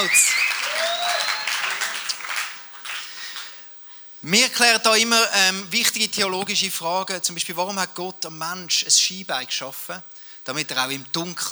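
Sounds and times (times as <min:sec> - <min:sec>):
speech: 0:00.0 - 0:00.5, 0:04.2 - 0:11.4
faint audience whistles: 0:00.0 - 0:02.4
audience applause: 0:00.0 - 0:03.6.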